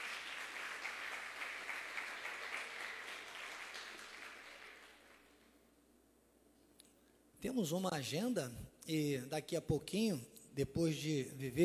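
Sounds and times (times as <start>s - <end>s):
audience applauding at a church worship service: 0.0s - 5.5s
speech: 7.4s - 11.6s.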